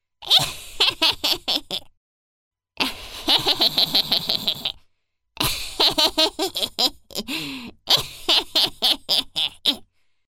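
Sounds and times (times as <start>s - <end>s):
mischievous witch laughing for Halloween: 0.2s - 1.9s, 2.8s - 4.8s, 5.4s - 9.8s.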